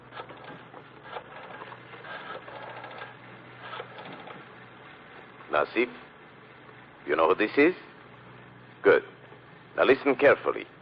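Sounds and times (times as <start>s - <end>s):
tape recording machine starting and whirring: 0.0s - 5.0s
speech: 5.5s - 6.0s, 7.1s - 7.8s, 8.8s - 9.1s, 9.8s - 10.7s.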